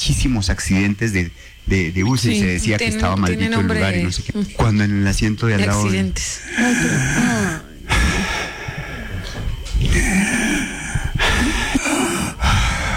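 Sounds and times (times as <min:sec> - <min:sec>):
speech: 0:00.1 - 0:08.3
person imitating heavy mouth breathing: 0:06.4 - 0:12.9.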